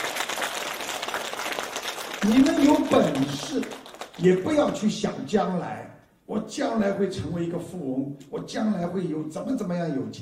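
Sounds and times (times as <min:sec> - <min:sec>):
audience applause: 0:00.0 - 0:04.7
speech: 0:02.2 - 0:10.1.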